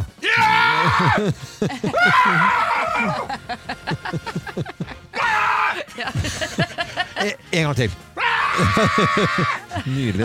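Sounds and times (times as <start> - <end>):
people screaming and cheering celebrating a football goal: 0.2 - 3.4, 8.2 - 9.8
laughter: 0.5 - 7.7, 8.4 - 10.2
speech: 1.0 - 5.0, 6.0 - 10.2.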